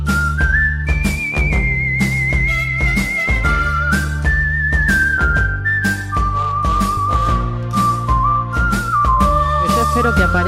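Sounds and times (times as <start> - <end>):
full band with steady bass and percussion: 0.0 - 10.4
loud whistled western-style theme melody: 0.0 - 10.4.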